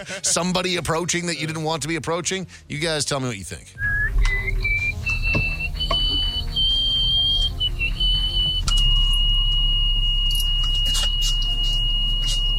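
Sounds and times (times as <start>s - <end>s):
speech: 0.0s - 3.9s
eerie high-pitched whistle made through the nose: 3.8s - 12.5s
steady low rumble: 3.8s - 12.5s.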